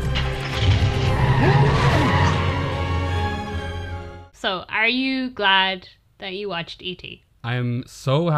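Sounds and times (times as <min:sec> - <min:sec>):
car skidding with tires squealing: 0:00.2 - 0:03.1
speech: 0:04.4 - 0:08.3.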